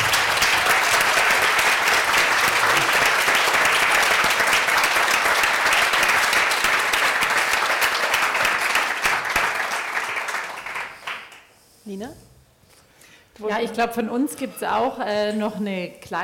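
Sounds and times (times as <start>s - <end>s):
large audience applauding in a hall at a food blog award ceremony: 0.0s - 11.5s
speech: 13.6s - 16.2s.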